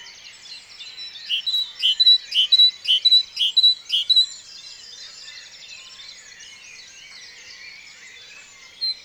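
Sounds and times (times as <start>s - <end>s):
Great tit Parus major song: 1.3s - 4.2s.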